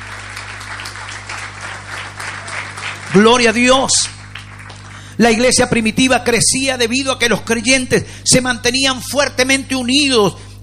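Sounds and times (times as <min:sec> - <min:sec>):
audience applauding: 0:00.0 - 0:05.3
speech: 0:03.1 - 0:04.2, 0:05.2 - 0:10.6.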